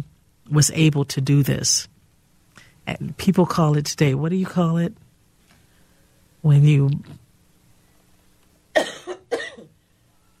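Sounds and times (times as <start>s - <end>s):
speech: 0.0s - 1.9s, 2.9s - 5.0s, 6.4s - 7.2s
person coughing: 8.8s - 9.8s.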